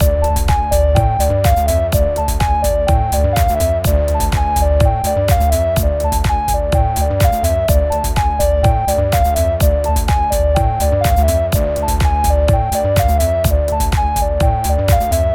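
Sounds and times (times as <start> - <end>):
eight-bar musical loop: 0.0 - 15.3.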